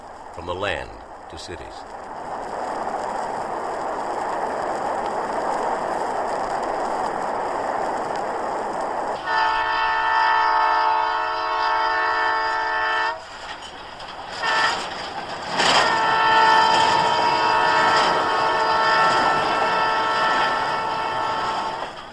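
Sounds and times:
train rumbling along railway tracks: 0.0s - 22.1s
speech: 0.4s - 2.1s
train horn blaring: 9.2s - 13.3s, 14.4s - 14.9s, 15.6s - 21.9s.

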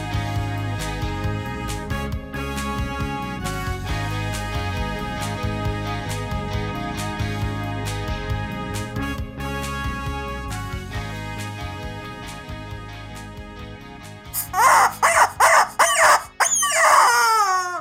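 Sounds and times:
soft music: 0.0s - 17.7s
rooster crowing: 14.6s - 17.7s.

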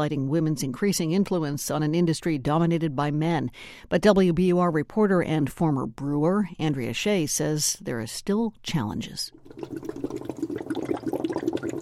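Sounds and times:
speech: 0.0s - 10.3s
yeast bubbling and gurgling while fermenting in beer: 9.3s - 11.8s.

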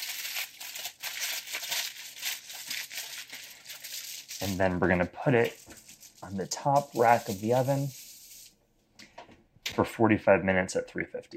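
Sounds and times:
aluminium foil crinkling as it is wrapped tightly around a loaf of bread: 0.0s - 8.5s
speech: 4.4s - 8.0s, 9.8s - 11.3s.

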